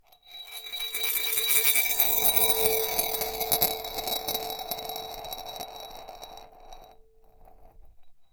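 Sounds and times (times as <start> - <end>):
marble spinning in a large wine glass: 0.1 - 7.9.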